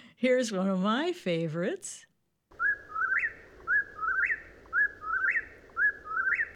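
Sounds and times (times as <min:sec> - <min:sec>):
speech: 0:00.2 - 0:02.1
whippoorwill singing its whistled three-note call: 0:02.5 - 0:06.5.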